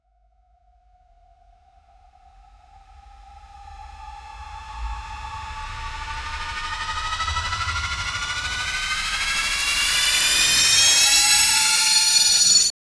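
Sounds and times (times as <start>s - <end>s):
cinematic riser: 4.4s - 12.7s
beat drop: 5.9s - 12.7s.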